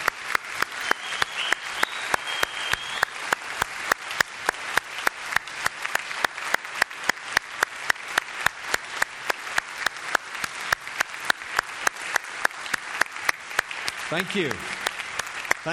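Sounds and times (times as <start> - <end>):
audience applauding: 0.0 - 15.7
speech: 14.1 - 14.8.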